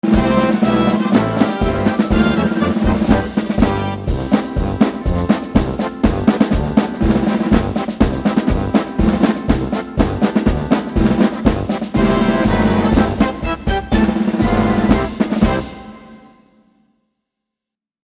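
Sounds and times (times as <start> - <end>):
military music: 0.0 - 16.5.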